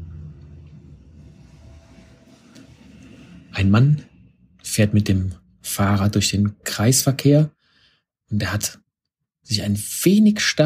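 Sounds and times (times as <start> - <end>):
bus rumbling past with a low droning engine: 0.0 - 4.8
speech: 3.6 - 4.1, 4.8 - 7.6, 8.3 - 8.8, 9.4 - 10.6.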